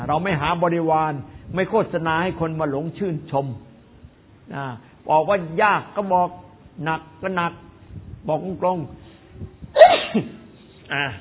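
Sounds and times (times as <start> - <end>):
speech: 0.1 - 3.7, 4.5 - 11.1
sneeze: 9.7 - 10.6.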